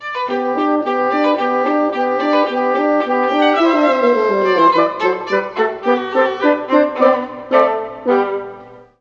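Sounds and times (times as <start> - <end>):
oboe: 0.0 - 8.9
viola: 0.0 - 8.9
horn: 0.3 - 8.9.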